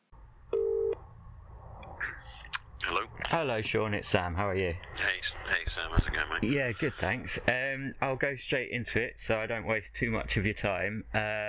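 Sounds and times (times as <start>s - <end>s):
quiet static: 0.0s - 11.4s
steady electronic telephone dialing tone: 0.5s - 1.0s
speech: 3.3s - 11.4s.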